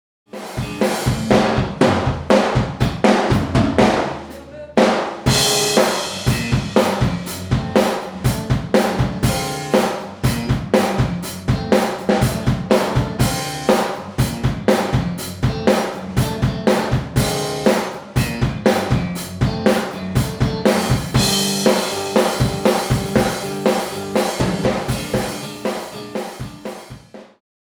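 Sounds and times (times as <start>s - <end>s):
isolated drums: 0.3s - 27.4s.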